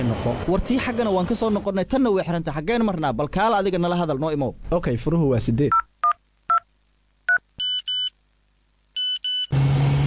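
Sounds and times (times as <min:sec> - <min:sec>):
speech: 0:00.0 - 0:05.9
mobile phone ringing with electronic tones: 0:07.3 - 0:08.1, 0:09.0 - 0:09.5.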